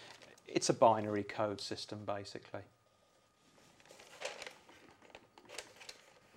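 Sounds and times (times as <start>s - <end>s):
speech: 0.5s - 2.8s
stiff paper piano roll rustling while loaded into a player piano: 3.4s - 6.3s.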